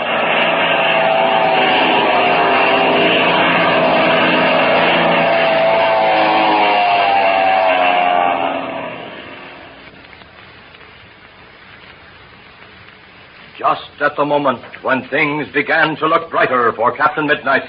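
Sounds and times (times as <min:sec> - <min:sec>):
propeller plane engine roaring as it dives overhead: 0:00.0 - 0:10.2
speech: 0:14.2 - 0:17.6.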